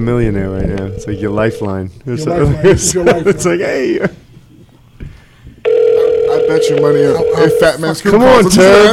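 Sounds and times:
speech: 0:00.0 - 0:04.2, 0:06.6 - 0:08.9
electronic phone call ringing tone: 0:00.8 - 0:01.9, 0:05.6 - 0:08.0.

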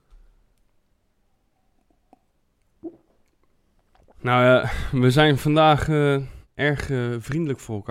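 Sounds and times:
person gulping water: 0:01.7 - 0:04.2
wet mouth clicks: 0:01.7 - 0:04.2
speech: 0:04.2 - 0:07.8.

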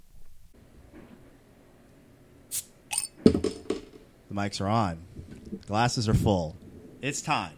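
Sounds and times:
beer bottle opening hiss and snap: 0:02.5 - 0:03.1
beer bottle cap clinking: 0:02.9 - 0:03.2
speech: 0:04.4 - 0:07.5.

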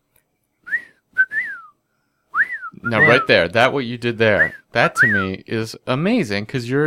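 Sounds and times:
person whistling a bird-like call with their mouth: 0:00.6 - 0:03.3
speech: 0:02.8 - 0:06.8.

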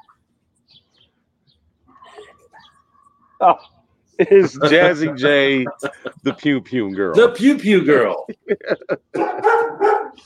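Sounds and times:
speech: 0:03.4 - 0:09.8
laughter: 0:04.2 - 0:09.8
dog barking: 0:09.2 - 0:10.2.

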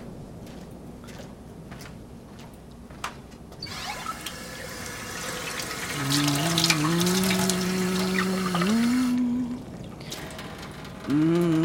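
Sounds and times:
water running from a tap: 0:03.7 - 0:09.2.

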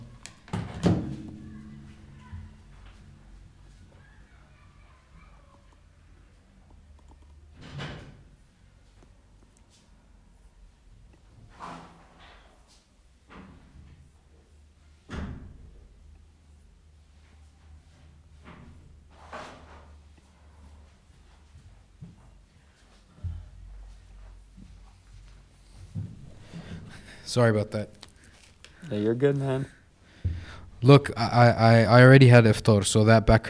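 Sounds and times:
ordinary door in Egypt swinging shut with a solid thud: 0:00.4 - 0:01.7
speech: 0:27.3 - 0:28.0, 0:28.9 - 0:29.8, 0:30.8 - 0:33.4.

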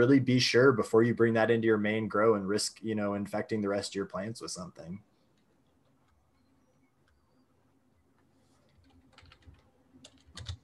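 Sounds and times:
speech: 0:00.0 - 0:05.1
typing on a computer keyboard: 0:08.6 - 0:10.6.

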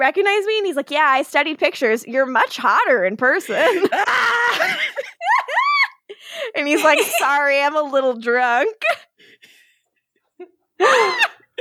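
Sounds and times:
speech: 0:00.0 - 0:05.0, 0:06.6 - 0:09.0, 0:10.4 - 0:11.3
laughter: 0:03.4 - 0:06.0, 0:06.6 - 0:07.5
woman screaming in excitement: 0:03.5 - 0:06.0, 0:10.8 - 0:11.4.

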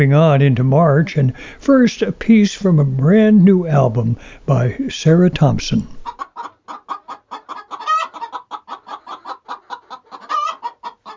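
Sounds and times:
speech: 0:00.0 - 0:06.0
hens clucking: 0:02.3 - 0:11.1.

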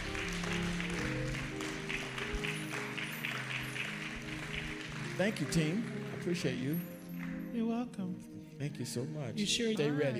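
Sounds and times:
church audience clapping hands: 0:00.0 - 0:07.6
speech: 0:05.2 - 0:06.9, 0:07.6 - 0:10.1.

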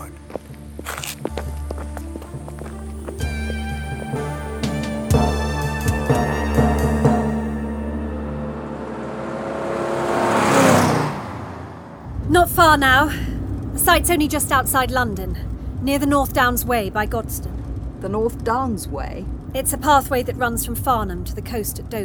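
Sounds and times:
footsteps: 0:00.0 - 0:07.3
car engine humming and speeding up: 0:00.0 - 0:22.0
speech: 0:12.6 - 0:22.0.

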